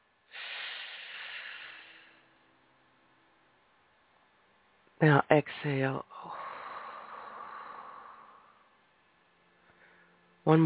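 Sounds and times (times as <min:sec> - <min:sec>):
slow inhale during a guided breathing exercise: 0:00.3 - 0:02.3, 0:06.1 - 0:08.8, 0:09.6 - 0:10.2
speech: 0:05.0 - 0:06.1, 0:10.5 - 0:10.6.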